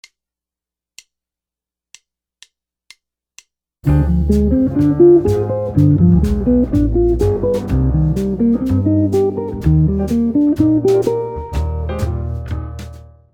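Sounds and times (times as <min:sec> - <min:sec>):
minor two five one guitar arpeggios: 0:03.9 - 0:11.4.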